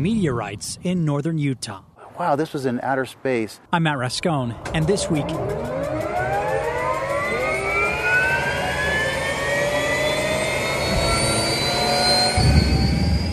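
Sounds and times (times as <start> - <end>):
speech: 0.0 - 5.8
helicopter flying overhead: 4.5 - 13.0.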